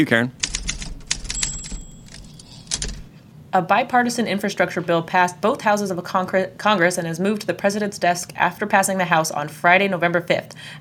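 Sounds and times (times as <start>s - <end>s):
speech: 0.0s - 0.4s, 3.6s - 10.7s
typewriter key strikes: 0.4s - 3.1s
thin high ring: 1.2s - 3.1s.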